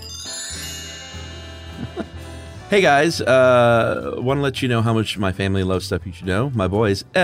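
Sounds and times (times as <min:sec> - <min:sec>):
bright musical chime: 0:00.0 - 0:03.3
speech: 0:02.7 - 0:07.2.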